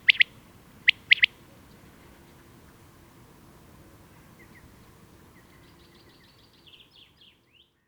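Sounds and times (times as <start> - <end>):
Common quail Coturnix coturnix song: 0.0 - 1.4.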